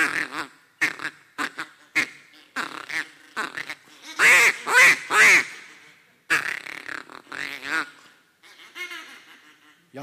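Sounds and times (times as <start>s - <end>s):
person imitating duck calls with the voice: 0.0s - 10.0s.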